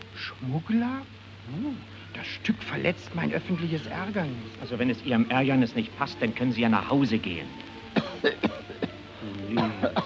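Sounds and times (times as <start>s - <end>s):
speech: 0.2s - 8.6s, 9.5s - 10.0s
theater audience member coughing harshly: 8.0s - 8.9s, 9.6s - 10.0s.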